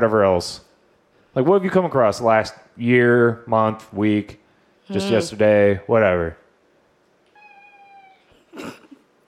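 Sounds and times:
speech: 0.0s - 0.7s, 1.3s - 6.4s
cat meowing: 7.3s - 8.5s.

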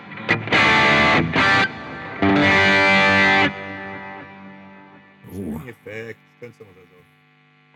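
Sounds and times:
driven distorted electric guitar through heavy delay effect: 0.0s - 5.0s
people talking: 5.3s - 7.0s.

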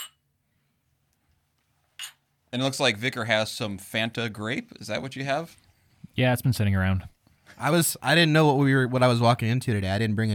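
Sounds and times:
glasses clinking in a toast: 0.0s - 0.2s, 2.0s - 2.2s
speech: 2.5s - 10.3s.

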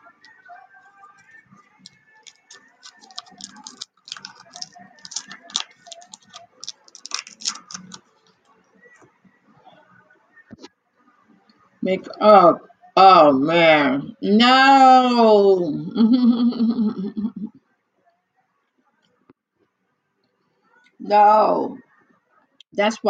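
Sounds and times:
paper being peeled off crinkling and rustling: 1.8s - 8.0s
speech: 11.9s - 17.1s, 21.1s - 21.8s, 22.8s - 23.0s.

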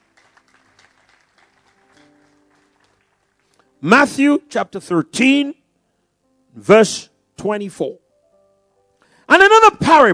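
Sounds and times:
crowd applauding: 0.0s - 3.8s
speech: 3.8s - 5.6s, 6.6s - 8.0s, 9.3s - 10.1s.

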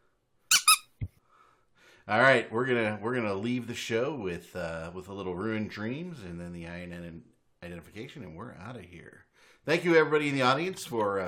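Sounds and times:
squeaky bee toy squeaking: 0.5s - 0.9s
speech: 2.1s - 11.2s.

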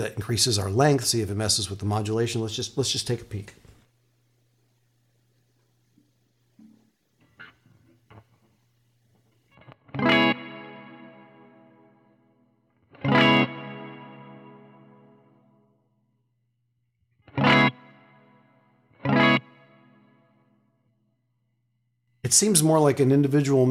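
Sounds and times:
speech: 0.0s - 3.7s, 22.3s - 23.6s
electric guitar played through a delay and reverb effects pedal: 6.6s - 8.6s, 9.2s - 15.9s, 17.2s - 21.0s.

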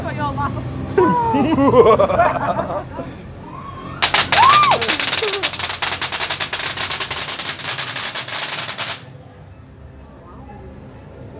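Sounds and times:
speech: 0.3s - 3.0s
laughter: 1.0s - 3.3s
air cannon blasts in a scare maze: 4.0s - 9.0s.

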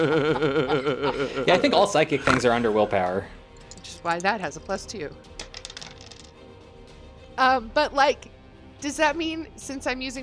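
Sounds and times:
laughter: 0.0s - 2.6s
speech: 0.0s - 5.4s, 7.4s - 10.2s
dice rolled in a game tumbling across a hard surface: 5.4s - 6.4s.

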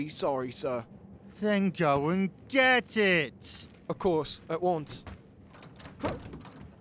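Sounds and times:
speech: 0.0s - 5.2s, 6.0s - 6.4s
steady low hum: 0.0s - 6.8s
stuck crew cabin door clunking and rattling as it is yanked: 4.9s - 6.8s.

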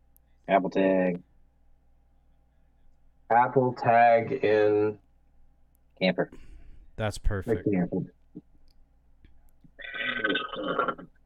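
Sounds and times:
speech: 0.5s - 1.3s, 3.3s - 5.0s, 6.0s - 8.5s
loud raspy burp after drinking soda: 9.8s - 11.1s.

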